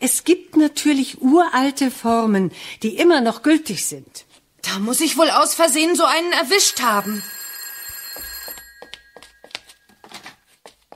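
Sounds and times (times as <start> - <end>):
speech: 0.0 - 7.4
old-style telephone bell ringing: 6.3 - 10.4.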